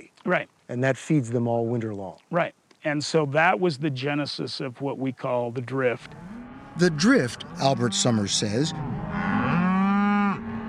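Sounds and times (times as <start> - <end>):
faint outdoor background: 0.0 - 10.6
speech: 0.2 - 9.3
cow giving a long drawn-out moo: 6.1 - 10.6.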